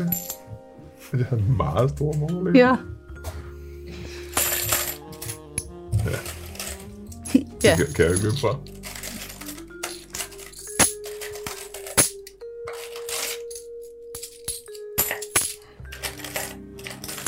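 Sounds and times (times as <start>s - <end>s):
coins clinking and rattling as they are shuffled and dropped onto a hard surface: 0.0s - 0.5s, 4.2s - 17.2s
speech: 1.1s - 3.0s, 7.6s - 8.7s.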